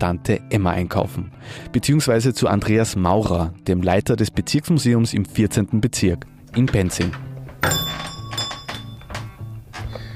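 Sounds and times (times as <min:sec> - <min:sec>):
speech: 0:00.0 - 0:08.1
heavy footsteps on a creaky wooden floor in a Viennese grocer's shop: 0:06.5 - 0:10.1
shop door bell jingling in a Viennese grocer's shop: 0:07.5 - 0:09.6.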